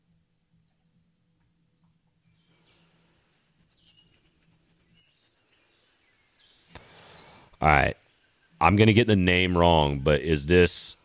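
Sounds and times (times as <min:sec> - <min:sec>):
black-and-white warbler singing: 0:03.5 - 0:10.4
speech: 0:07.6 - 0:08.0, 0:08.6 - 0:11.0.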